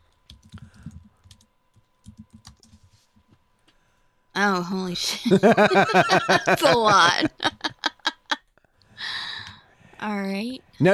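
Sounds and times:
typing on a computer keyboard: 0.2s - 3.0s
speech: 4.4s - 7.6s, 10.0s - 10.9s
laughter: 5.1s - 8.4s.

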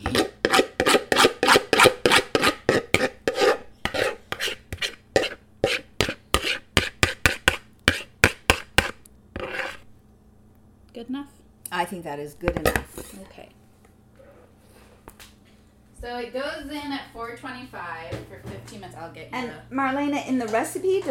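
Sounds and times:
spoon scraping pumpkin pie filling from a mixing bowl: 0.0s - 9.9s
speech: 12.1s - 13.7s, 16.0s - 21.0s.

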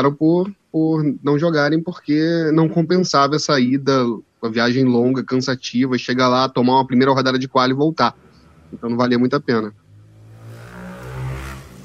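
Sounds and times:
speech: 0.0s - 9.8s
motorcycle engine droning as it passes outside: 6.9s - 11.8s.

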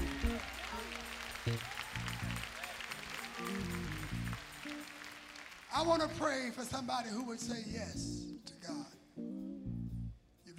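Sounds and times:
audience clapping in praise: 0.0s - 7.4s
music playing: 0.0s - 10.5s
speech: 1.5s - 1.8s, 5.8s - 8.8s.

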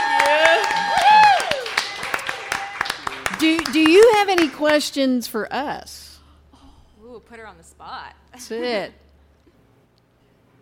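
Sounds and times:
loud whoops and cheering voices: 0.0s - 3.0s
audience clapping: 0.0s - 4.9s
speech: 3.4s - 6.1s, 7.2s - 9.0s.

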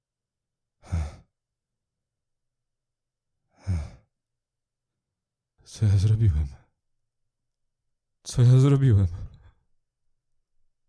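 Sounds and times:
heavy panting breaths: 0.8s - 1.3s, 3.5s - 4.1s
speech: 5.7s - 6.6s, 8.2s - 9.3s.

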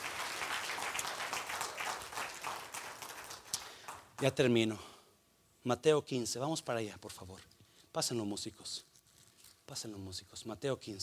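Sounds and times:
large crowd applauding: 0.0s - 4.3s
speech: 4.2s - 4.9s, 5.6s - 8.9s, 9.7s - 11.0s.

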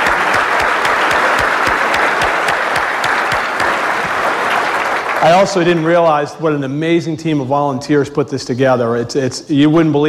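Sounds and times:
audience applause: 0.0s - 6.2s
speech: 5.2s - 10.0s.

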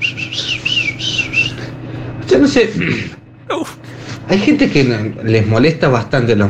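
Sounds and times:
small birds chirping: 0.0s - 1.7s
low hum: 0.0s - 6.4s
speech: 2.3s - 6.4s.

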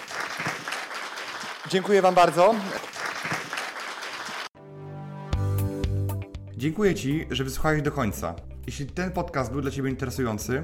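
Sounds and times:
dense crackling applause from many hands: 0.0s - 4.6s
speech: 1.7s - 2.9s, 6.6s - 10.6s
bright sustained musical passage: 4.6s - 10.6s.

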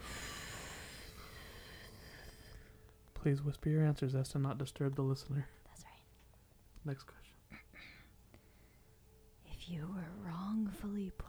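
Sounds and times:
person exhaling through the mouth during a guided breathing exercise: 0.0s - 2.6s
speech: 3.2s - 5.9s, 6.8s - 7.6s, 9.7s - 11.2s.

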